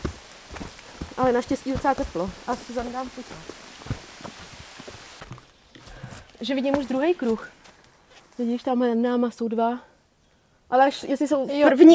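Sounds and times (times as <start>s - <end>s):
rain in a valley: 0.0s - 5.5s
speech: 1.2s - 3.6s, 6.4s - 7.6s, 8.4s - 9.9s, 10.7s - 11.9s.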